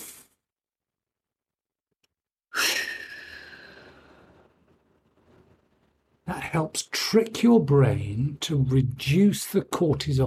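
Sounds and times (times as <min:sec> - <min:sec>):
person taking a deep slow breath in and breathing out swiftly: 0:02.6 - 0:04.5
speech: 0:06.3 - 0:10.2.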